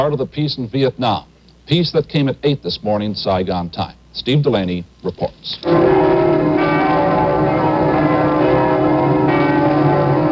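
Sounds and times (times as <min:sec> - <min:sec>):
speech: 0:00.0 - 0:06.1
bells ringing: 0:05.6 - 0:10.3.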